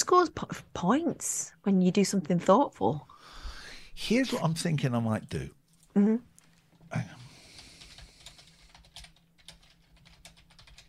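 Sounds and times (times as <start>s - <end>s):
speech: 0.1s - 3.4s, 4.0s - 6.3s, 6.9s - 7.2s
typing on a computer keyboard: 7.5s - 10.8s.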